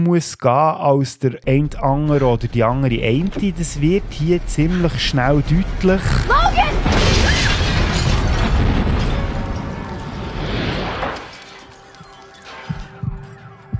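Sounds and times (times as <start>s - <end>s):
speech: 0.0s - 6.7s
bomb explosion in a TV series: 1.6s - 11.3s.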